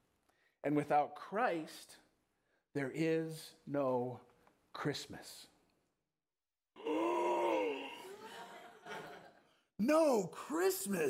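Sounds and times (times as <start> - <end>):
speech: 0.6 - 2.0, 2.8 - 5.5, 9.8 - 11.0
dramatic group gasp of shocked voices: 6.8 - 8.7
murmuring reactions: 6.8 - 8.7
laughter: 7.8 - 9.6.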